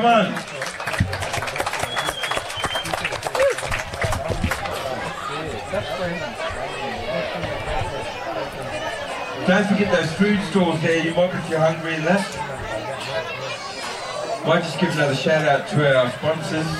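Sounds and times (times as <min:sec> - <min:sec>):
speech: 0:00.0 - 0:00.6, 0:09.5 - 0:12.6, 0:14.4 - 0:16.7
festival crowd applauding: 0:00.0 - 0:06.0
busy murmur of many people chatting: 0:00.0 - 0:16.7.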